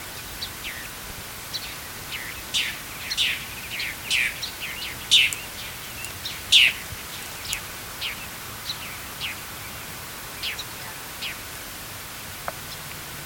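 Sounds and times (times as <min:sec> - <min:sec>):
Northern Mockingbird Mimus polyglottos: 0:01.5 - 0:09.4.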